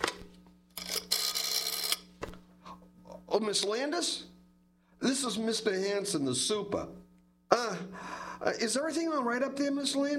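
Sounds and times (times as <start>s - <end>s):
house telephone being dialed: 0.0s - 2.1s
faint steady hum: 0.0s - 10.1s
speech: 3.4s - 4.3s, 5.0s - 10.1s.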